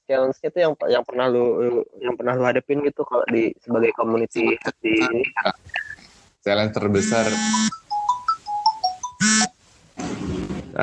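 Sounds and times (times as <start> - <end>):
speech: 0.1 - 7.8
phone ringtone with buzzy tones and electronic notes: 7.0 - 9.6.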